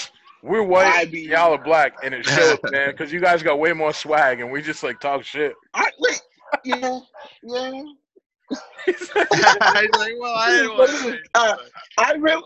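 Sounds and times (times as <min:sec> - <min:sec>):
people imitating a dog barking: 0:00.0 - 0:07.3, 0:08.6 - 0:11.4
speech: 0:00.4 - 0:12.4
laughter-like bursts: 0:00.8 - 0:03.6, 0:08.8 - 0:11.2.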